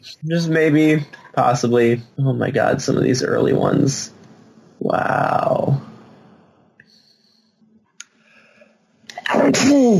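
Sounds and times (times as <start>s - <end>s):
speech: 0.0s - 4.2s, 4.8s - 5.9s, 9.5s - 9.9s
person sneezing: 9.3s - 9.9s.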